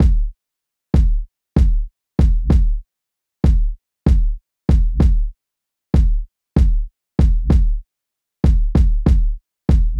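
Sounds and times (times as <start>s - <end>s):
modern hip hop kick drums: 0.0s - 0.3s, 1.0s - 2.8s, 3.4s - 5.3s, 6.0s - 7.8s, 8.4s - 9.9s.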